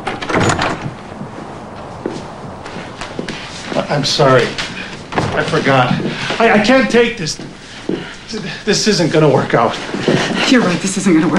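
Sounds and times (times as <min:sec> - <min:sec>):
door pulled open with a rattling clunk: 0:00.0 - 0:01.4
soft shuffling footsteps: 0:00.8 - 0:11.3
speech: 0:03.8 - 0:04.7, 0:05.4 - 0:07.5, 0:08.3 - 0:11.3.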